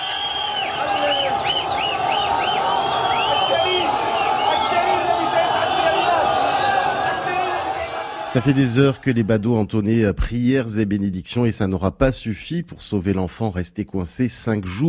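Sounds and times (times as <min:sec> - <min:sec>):
large crowd cheering in Morocco: 0:00.0 - 0:09.8
speech: 0:08.3 - 0:14.8.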